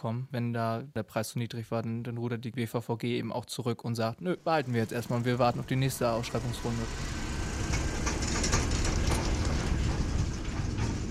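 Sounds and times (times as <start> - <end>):
speech: 0.0 - 7.2
large tractors hauling overfull trailers of maize silage in Karft: 4.4 - 11.0
faint rattling of trailers: 4.5 - 11.0.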